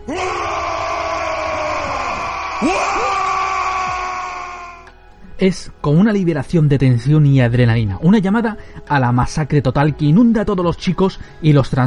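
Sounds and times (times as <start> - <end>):
horde of orcs roaring a guttural battle cry: 0.0 - 4.9
howls swooping up and down: 0.0 - 4.9
speech: 2.6 - 3.1, 5.4 - 11.8.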